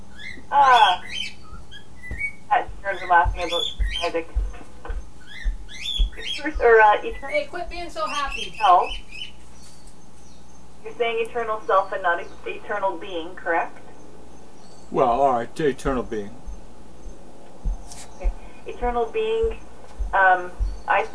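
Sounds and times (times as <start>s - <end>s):
low hum: 0.0s - 21.1s
bird squawking and whistling: 0.1s - 4.2s, 5.2s - 9.3s
speech: 0.5s - 1.4s, 3.1s - 4.4s, 6.4s - 9.0s, 10.8s - 13.8s, 14.9s - 16.4s, 18.6s - 21.1s.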